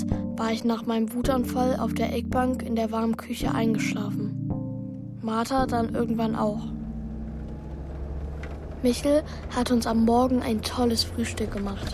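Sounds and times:
speech: 0.4s - 4.4s, 5.2s - 6.8s, 8.8s - 11.9s
car driving to the train station in Innsbruck: 5.5s - 11.9s.

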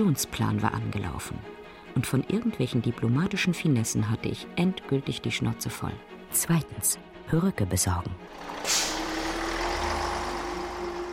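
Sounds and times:
speech: 0.0s - 9.0s
bus air brakes hissing: 8.3s - 11.1s
large bus engine idling with a low rumble: 8.3s - 11.1s.

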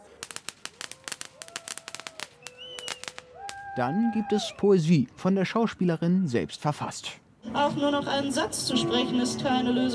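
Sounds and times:
rapid string of sharp firecracker pops: 0.0s - 3.6s
faint tonal whistles: 2.4s - 3.1s
speech: 3.8s - 9.9s.

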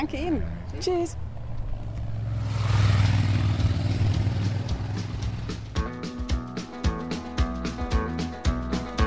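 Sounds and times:
speech: 0.0s - 1.3s
motorcycle engine roaring past on a country road: 0.4s - 5.8s
upbeat music with a strummed, rhythmic beat: 4.5s - 9.0s.

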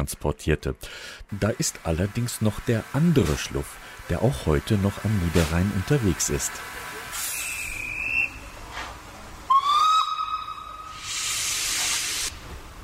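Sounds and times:
speech: 0.0s - 6.9s
steam locomotive hissing steam at station: 0.9s - 12.8s
station ambience: 1.0s - 11.2s
steam locomotive whistle at station: 7.1s - 8.6s, 9.5s - 12.3s.

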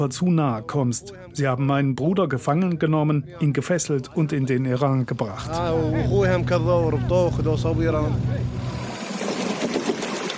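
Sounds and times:
speech: 0.0s - 8.5s
boat motor humming: 5.4s - 10.0s
hissing wash of water on the broad Shatt al-Arab river: 8.5s - 10.3s.

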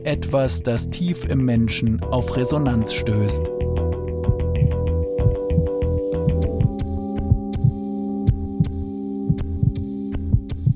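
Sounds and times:
speech: 0.0s - 3.6s
heartbeat: 4.2s - 5.8s, 6.4s - 10.7s
continuous low hum: 4.2s - 10.7s.

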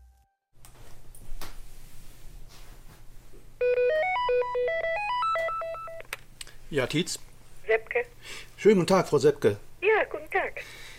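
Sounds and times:
low hum: 0.6s - 10.9s
landline telephone ringing with bright electronic melody: 3.6s - 6.0s
speech: 6.7s - 9.7s, 10.3s - 10.9s.

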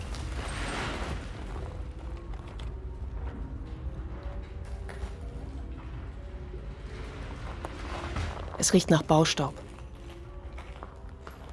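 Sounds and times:
load of plaster and debris crashing down a stairwell: 0.0s - 2.3s, 6.7s - 8.6s
creaks and crackles as material settles: 0.0s - 11.5s
gritty rumble of settling material: 0.0s - 11.5s
speech: 8.6s - 9.6s.

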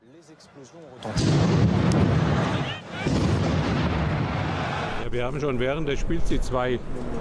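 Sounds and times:
crowd-like noise in a football stadium: 0.0s - 7.1s
speech: 0.3s - 2.1s, 5.0s - 7.1s
loud booming explosions from attacks in Paris heard in a football match broadcast: 1.2s - 4.8s.

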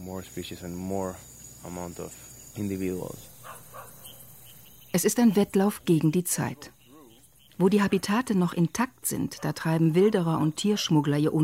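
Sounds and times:
high-pitched insect hum: 0.0s - 11.4s
tree frogs calling: 0.0s - 11.4s
speech: 0.1s - 3.3s, 5.0s - 6.8s, 7.6s - 11.4s.

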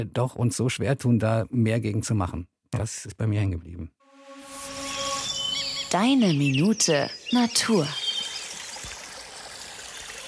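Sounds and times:
speech: 0.0s - 4.0s, 5.9s - 8.0s
babbling brook in a forest valley: 6.0s - 10.2s.

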